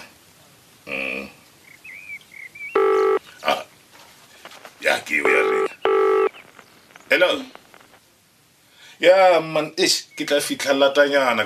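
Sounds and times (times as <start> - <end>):
telephone keypad tones as a number is dialed: 2.8 - 3.2, 5.3 - 6.4
speech: 5.0 - 5.5, 7.1 - 7.6, 9.0 - 11.4.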